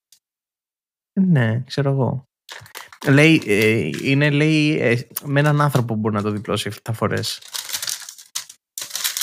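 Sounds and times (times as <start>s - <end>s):
speech: 1.2s - 2.3s, 3.0s - 7.6s
A4 sheet of paper being handled: 2.5s - 9.2s.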